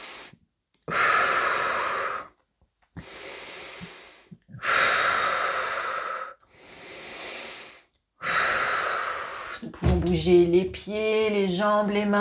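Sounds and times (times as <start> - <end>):
slow deep breaths in and out: 0.0 - 2.4, 3.0 - 9.7
speech: 10.0 - 12.1.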